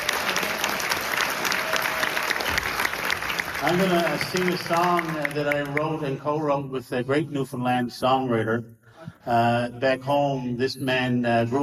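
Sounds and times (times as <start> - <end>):
crowd applauding: 0.0 - 6.1
speech: 3.6 - 11.6.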